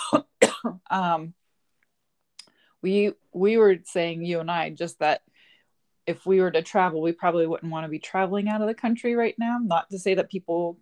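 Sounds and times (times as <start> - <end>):
person coughing: 0.0 - 0.8
speech: 0.9 - 1.4, 2.8 - 5.3, 6.1 - 10.7.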